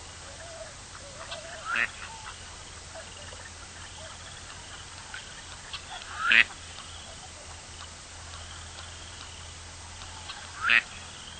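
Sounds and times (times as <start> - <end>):
low steady hum: 0.0 - 11.3
gadwall sharp rising nasal calls: 0.2 - 11.3.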